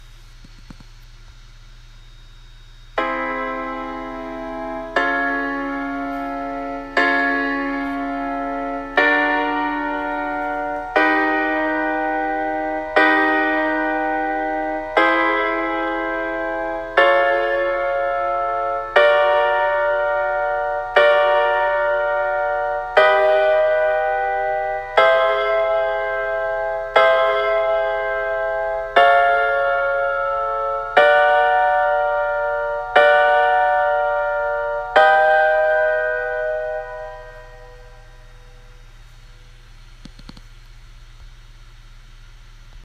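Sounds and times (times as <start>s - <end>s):
augmented chord: 2.9s - 39.6s.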